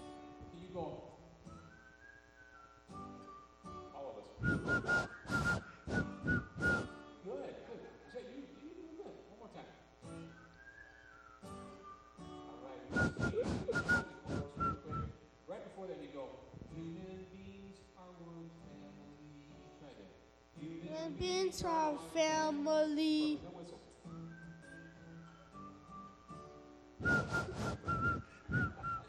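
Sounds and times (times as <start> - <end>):
speech: 0.7 - 1.1, 21.1 - 23.5
several people whistling a simple song tune together: 1.5 - 3.8, 4.4 - 7.1, 10.1 - 15.2, 24.0 - 29.0.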